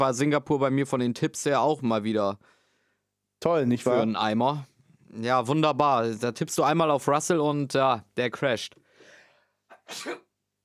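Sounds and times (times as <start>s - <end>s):
speech: 0.0s - 2.6s, 3.4s - 8.8s, 9.9s - 10.2s
single loud sneeze with breathy intake: 9.7s - 10.3s.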